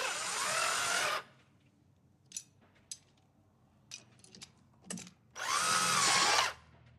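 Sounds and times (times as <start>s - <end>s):
electric drill driving screws into lock: 0.0s - 1.3s, 5.4s - 6.6s.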